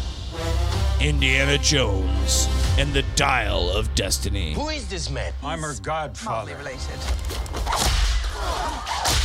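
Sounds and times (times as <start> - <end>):
speech: 1.0 - 9.2
whip cracks: 7.6 - 9.2.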